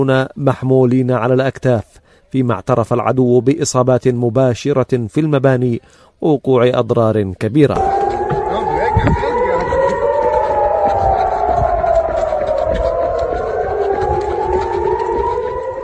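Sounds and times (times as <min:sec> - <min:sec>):
speech: 0:00.0 - 0:08.0, 0:09.0 - 0:09.3
air raid sirens wailing in settlements and cities under rocket fire: 0:07.7 - 0:15.8.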